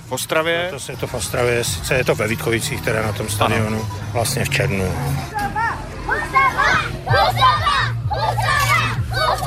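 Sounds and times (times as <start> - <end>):
speech: 0.1 - 5.6
crowd of schoolchildren fans cheering and shouting: 5.4 - 9.4.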